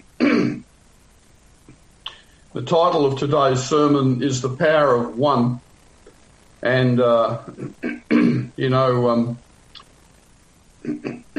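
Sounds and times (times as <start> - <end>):
person with a sore throat clearing it: 0.2 - 0.7, 7.4 - 8.6, 10.8 - 11.3
speech: 2.6 - 5.7, 6.6 - 9.4.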